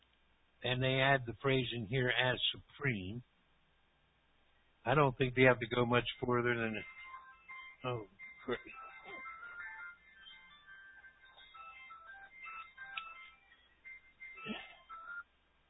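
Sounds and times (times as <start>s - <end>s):
speech: 0.6s - 3.3s, 4.8s - 7.0s, 7.8s - 8.8s
melodic phone ringtone with looping electronic tune: 6.6s - 15.3s
vocal sounds: 14.4s - 14.9s.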